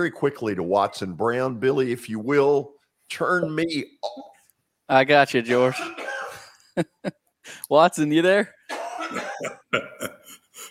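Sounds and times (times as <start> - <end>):
speech: 0.0 - 4.3, 4.9 - 6.1, 6.8 - 10.2
person coughing: 5.5 - 6.6, 8.7 - 10.7.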